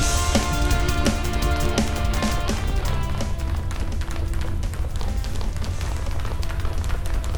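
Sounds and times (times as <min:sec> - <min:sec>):
sustained musical tones: 0:00.0 - 0:05.2
running footsteps: 0:00.0 - 0:07.3.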